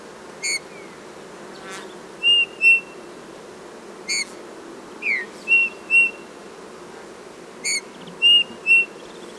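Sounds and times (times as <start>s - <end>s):
Eurasian bullfinch Pyrrhula pyrrhula giving soft piping whistled calls: 0.4s - 0.7s, 2.2s - 2.9s, 4.1s - 4.3s, 5.0s - 6.2s, 7.6s - 9.0s.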